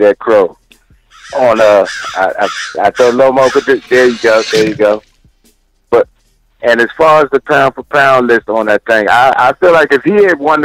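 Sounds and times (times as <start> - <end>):
speech: 0.0 - 0.6, 1.2 - 5.1, 5.9 - 10.6
crow cawing: 1.1 - 4.8.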